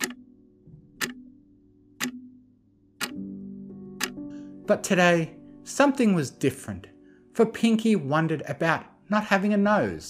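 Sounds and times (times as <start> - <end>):
clock ticking steadily: 0.0 - 3.4, 4.0 - 4.3
speech: 4.7 - 10.0.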